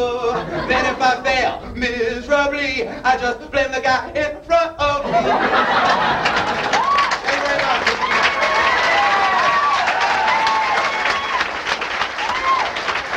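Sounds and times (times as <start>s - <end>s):
laughter: 0.1s - 1.8s, 3.8s - 9.7s
speech: 0.7s - 6.4s
crowd applauding: 5.4s - 13.1s
scattered cheers: 6.2s - 13.1s.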